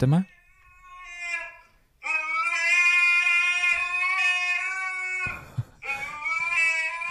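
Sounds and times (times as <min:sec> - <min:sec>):
speech: 0:00.0 - 0:00.4
fat husky howling in a played video: 0:00.6 - 0:07.0.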